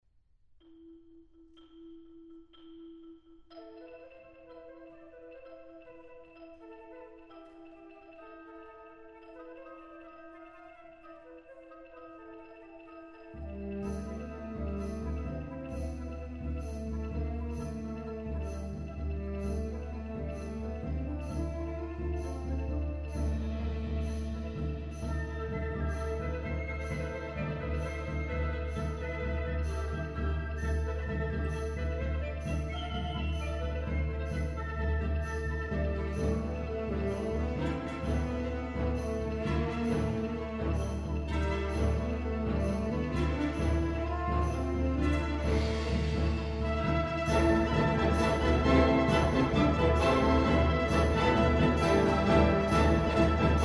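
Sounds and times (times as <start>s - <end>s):
symphonic band playing: 6.4s - 53.6s.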